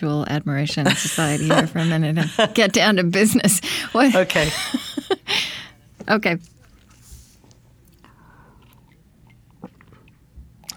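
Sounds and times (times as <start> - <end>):
speech: 0.0 - 6.5
air conditioning fan hum: 0.0 - 10.7
laughter: 0.7 - 5.7
crunchy chewing-like noises: 5.7 - 10.7.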